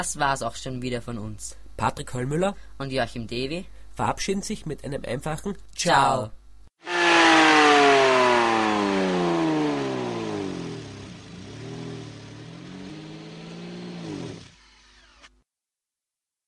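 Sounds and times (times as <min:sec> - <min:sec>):
speech: 0:00.0 - 0:06.9
1000 hp offshore racing boat engine revving: 0:06.8 - 0:14.6.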